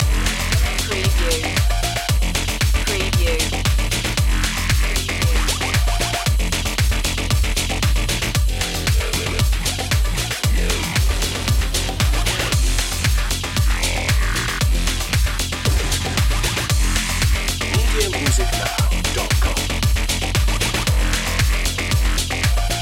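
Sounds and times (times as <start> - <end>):
disco stepping loop: 0.0 - 22.8.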